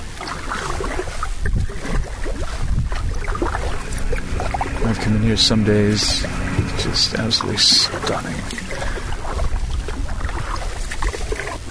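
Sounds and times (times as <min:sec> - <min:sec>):
kayak paddle strokes splashing in salt water in Prince Cove: 0:00.0 - 0:04.9, 0:07.4 - 0:11.6
light wind rumble on the microphone: 0:00.0 - 0:11.6
speech: 0:05.1 - 0:08.6.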